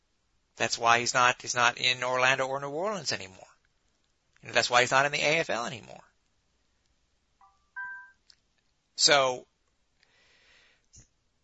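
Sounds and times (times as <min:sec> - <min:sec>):
speech: 0:00.6 - 0:03.5, 0:04.4 - 0:06.1, 0:09.0 - 0:09.5
mobile phone ringing: 0:07.4 - 0:08.2.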